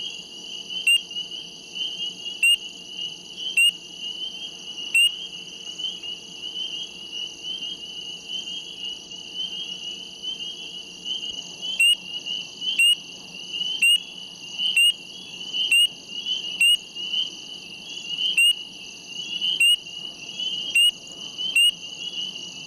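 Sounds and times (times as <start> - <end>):
spring peeper short sharp peeps: 0.8 - 1.0, 3.5 - 3.8, 4.9 - 5.2, 11.2 - 12.0, 12.7 - 13.0, 13.6 - 15.0, 15.6 - 17.3, 18.2 - 18.6, 19.3 - 19.8, 20.5 - 21.8.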